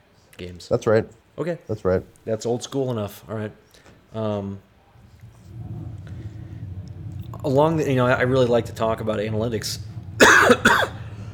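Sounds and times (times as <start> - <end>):
speech: 0.4 - 4.7, 7.4 - 11.0
person coughing from popcorn caught in the throat: 10.2 - 11.0.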